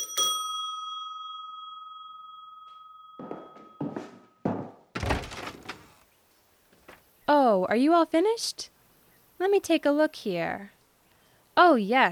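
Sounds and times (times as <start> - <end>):
doorbell ringing with a bright ding: 0.0 - 4.5
dull thumps and clatter: 3.3 - 6.0
speech: 7.5 - 8.7, 9.4 - 10.8, 11.6 - 12.0.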